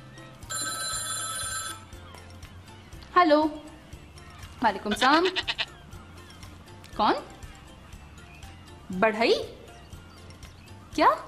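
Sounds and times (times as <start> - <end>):
phone ringing with an electronic ringtone: 0.3 - 2.2
speech: 3.2 - 3.6, 4.6 - 5.6, 7.0 - 7.3, 8.9 - 9.6, 11.0 - 11.2.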